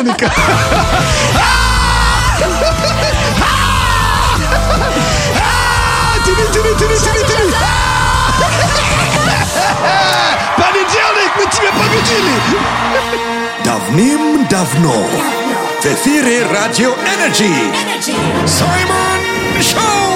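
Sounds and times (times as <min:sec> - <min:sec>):
speech: 0:00.0 - 0:01.6, 0:06.4 - 0:10.0, 0:11.3 - 0:20.1
laughter: 0:00.0 - 0:13.6
group of people yelling together: 0:00.3 - 0:13.6.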